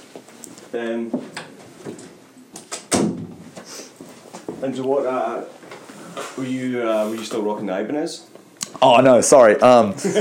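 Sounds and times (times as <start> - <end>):
speech: 0.7 - 2.0, 4.6 - 5.6, 6.2 - 10.1
door swinging shut with a solid thud: 2.8 - 3.4.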